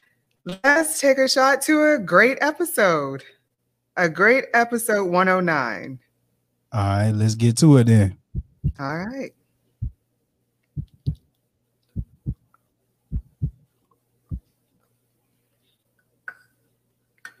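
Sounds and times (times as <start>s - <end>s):
speech: 0.4s - 3.4s, 4.0s - 6.0s, 6.7s - 9.4s
low hum: 6.9s - 9.0s, 10.8s - 11.2s, 12.0s - 12.4s, 13.1s - 13.6s
deep heartbeat thumping: 8.2s - 9.0s, 10.8s - 11.2s, 12.0s - 12.4s, 13.1s - 13.6s.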